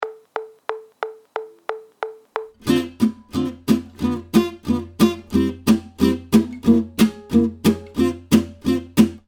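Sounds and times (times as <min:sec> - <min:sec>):
guitar jazz chord progression lick: 0:02.5 - 0:09.2.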